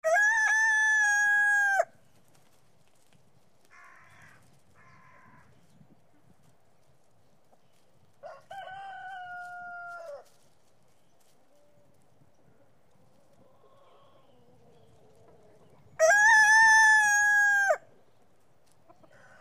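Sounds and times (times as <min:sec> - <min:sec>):
rooster crowing: 0:00.0 - 0:01.9, 0:08.2 - 0:10.2, 0:16.0 - 0:17.8.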